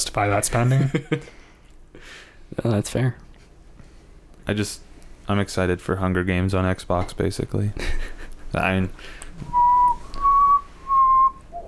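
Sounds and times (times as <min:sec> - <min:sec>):
speech: 0:00.0 - 0:01.4, 0:02.6 - 0:03.2, 0:04.5 - 0:09.6
person whistling: 0:09.5 - 0:11.6.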